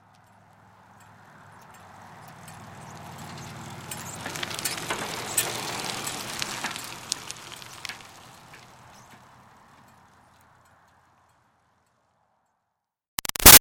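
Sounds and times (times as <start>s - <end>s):
retro cruiser bicycle pedaling slowly: 0.0s - 12.7s.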